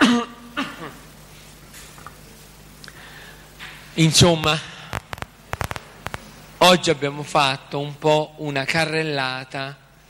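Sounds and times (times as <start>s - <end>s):
person clearing throat: 0.0s - 1.1s
person coughing: 0.0s - 1.1s
speech: 4.0s - 4.7s, 6.7s - 9.8s.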